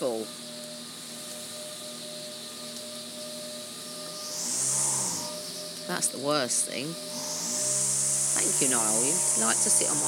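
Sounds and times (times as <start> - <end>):
vacuum cleaner running upstairs: 1.1 - 10.0
speech: 5.9 - 7.3, 8.5 - 10.0.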